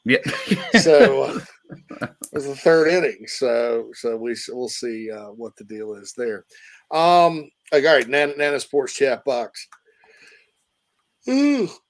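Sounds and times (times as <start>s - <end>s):
speech: 0.0s - 9.8s, 11.2s - 11.8s
laughter: 0.1s - 2.8s
person yawning: 11.3s - 11.8s.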